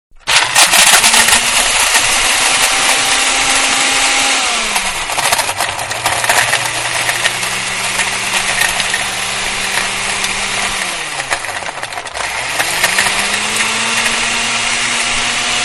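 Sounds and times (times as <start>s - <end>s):
electric blender blending dry ingredients: 0.1s - 15.6s.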